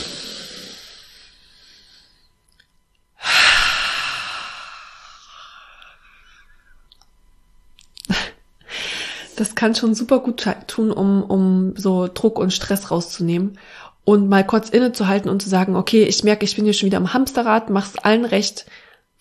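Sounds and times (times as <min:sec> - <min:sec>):
deep deliberate breath: 0:00.0 - 0:02.4, 0:03.2 - 0:06.8, 0:08.6 - 0:09.4, 0:13.6 - 0:14.0, 0:18.7 - 0:19.1
speech: 0:09.4 - 0:19.2.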